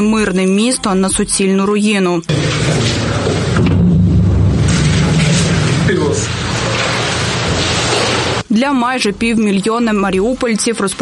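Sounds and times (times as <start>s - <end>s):
speech: 0.0s - 3.0s, 8.6s - 11.0s
shelling explosions rumbling in a dense continuous roar: 2.3s - 8.4s.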